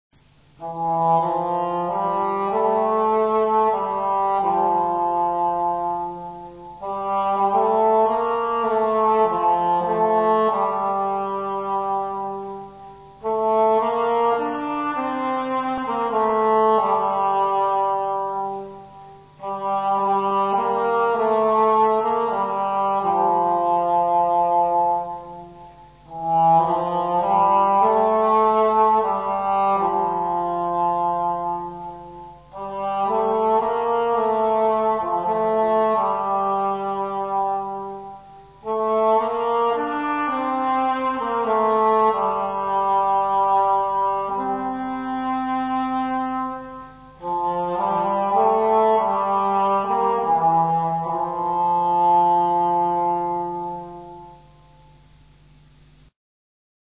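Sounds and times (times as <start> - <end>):
English horn: 0.2 - 56.1.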